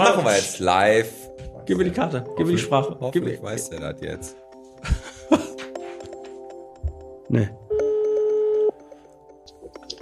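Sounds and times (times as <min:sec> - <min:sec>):
speech: 0:00.0 - 0:05.4, 0:07.3 - 0:07.6
laughter: 0:04.8 - 0:05.7
telephone ringback tone: 0:07.7 - 0:08.8.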